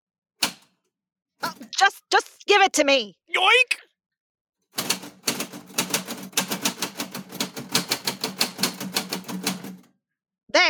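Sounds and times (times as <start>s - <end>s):
typewriter typing with sharp clacking keystrokes: 0.4s - 0.7s, 4.8s - 9.9s
speech: 2.6s - 3.9s.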